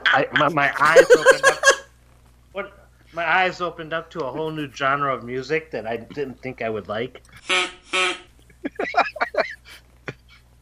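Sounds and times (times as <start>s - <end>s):
laughter: 0.0s - 1.8s, 8.5s - 10.3s
speech: 0.2s - 1.7s, 2.6s - 8.0s
duck call blowing raspy quacks: 7.4s - 8.3s.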